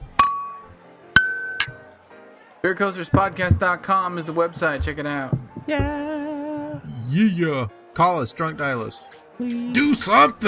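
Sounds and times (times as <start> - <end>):
glasses clinking in a toast while drinking: 0.0 - 1.8
speech: 2.6 - 6.0, 6.8 - 10.4.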